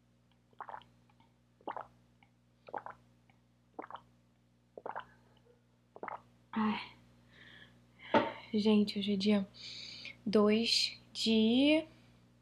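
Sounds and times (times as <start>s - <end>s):
low hum: 0.0s - 12.4s
person gulping swallows of water: 0.6s - 0.8s, 1.7s - 1.9s, 2.7s - 3.0s, 3.8s - 4.0s, 4.8s - 5.1s, 6.0s - 6.2s
speech: 6.6s - 7.0s, 8.5s - 11.9s.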